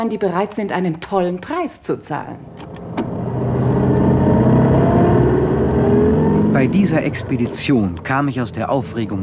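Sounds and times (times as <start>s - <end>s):
speech: 0.0s - 2.8s, 6.6s - 9.2s
car driving with engine and road noise: 2.2s - 9.2s.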